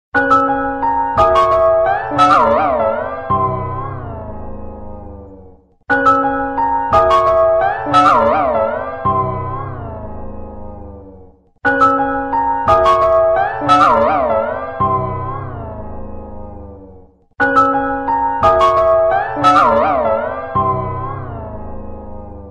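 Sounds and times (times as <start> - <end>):
distorted Nokia phone ringtone: 0.3 - 4.0, 6.9 - 9.6, 11.7 - 15.6, 17.4 - 21.3.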